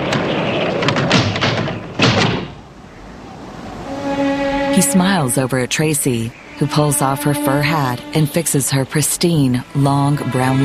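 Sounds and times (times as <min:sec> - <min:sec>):
doors banging shut in the wind: 0:00.0 - 0:02.7
speech: 0:04.8 - 0:10.6.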